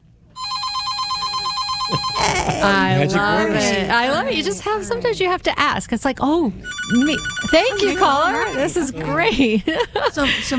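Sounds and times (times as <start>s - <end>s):
telephone ringing with an incoming call: 0.4s - 2.5s, 6.6s - 9.0s
laughter: 1.7s - 5.3s, 7.0s - 10.5s
speech: 2.6s - 10.5s.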